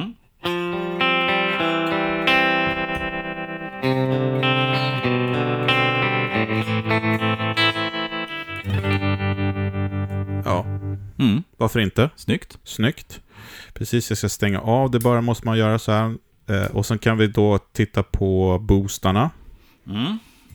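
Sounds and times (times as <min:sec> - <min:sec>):
electric guitar playing chords through a tremolo effect: 0:00.0 - 0:11.2
speech: 0:11.6 - 0:20.5.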